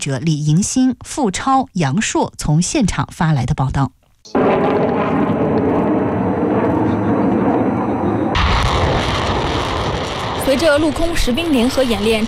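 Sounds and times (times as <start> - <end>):
speech: 0.0 - 4.8, 10.5 - 12.2
drone swarm lifting off during a military exercise: 4.3 - 11.1.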